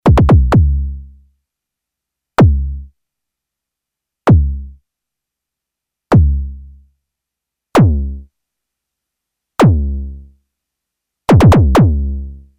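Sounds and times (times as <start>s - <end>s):
kick drums on a Behringer Model D desktop synthesizer: 0.0s - 0.8s, 2.4s - 2.8s, 4.3s - 4.6s, 6.1s - 6.4s, 7.8s - 8.2s, 9.6s - 10.0s, 11.3s - 12.2s.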